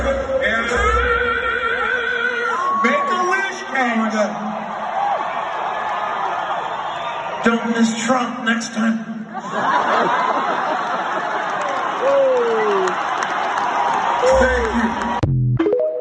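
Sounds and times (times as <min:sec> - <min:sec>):
large concert crowd cheering and applauding: 0:00.4 - 0:07.9, 0:09.4 - 0:15.4
speech: 0:03.8 - 0:04.7, 0:07.4 - 0:10.3
scattered laughter in a concert crowd: 0:09.2 - 0:15.2.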